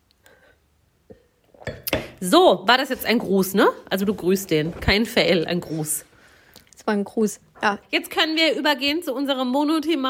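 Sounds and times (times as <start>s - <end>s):
glasses clinking together in a toast: 1.1s - 2.2s
speech: 2.2s - 6.1s, 6.8s - 10.0s.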